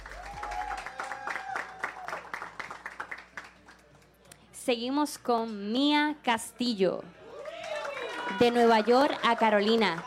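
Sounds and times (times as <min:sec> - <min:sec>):
audience applause: 0:00.0 - 0:03.8, 0:07.3 - 0:10.0
speech: 0:04.7 - 0:07.2, 0:08.4 - 0:10.0.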